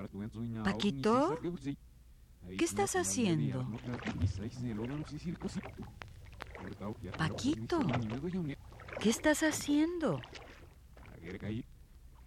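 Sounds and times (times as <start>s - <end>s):
speech: 0.0s - 6.0s, 6.6s - 10.5s, 11.2s - 11.7s
water splashing and sloshing: 2.8s - 12.2s.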